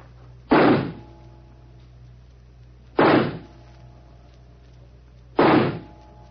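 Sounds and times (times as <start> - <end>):
revolver shots fired in a shooting contest: 0.5 - 1.1, 3.0 - 3.5, 5.4 - 6.0.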